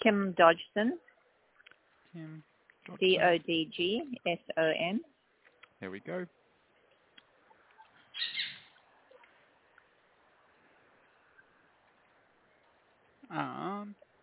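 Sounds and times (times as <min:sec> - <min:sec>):
speech: 0:00.0 - 0:01.1, 0:02.1 - 0:05.1, 0:05.8 - 0:06.4, 0:13.3 - 0:14.0
sun conure parrot squawking: 0:08.1 - 0:08.8.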